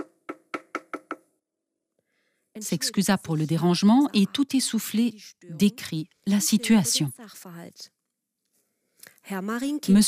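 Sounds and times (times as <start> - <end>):
knocking on a door: 0.0 - 1.3
speech: 2.6 - 8.0, 9.2 - 10.0.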